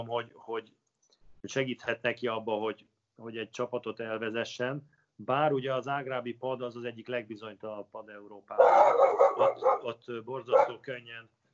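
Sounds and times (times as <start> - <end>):
speech: 0.0 - 11.4
dog barking: 8.6 - 9.9, 10.5 - 10.8.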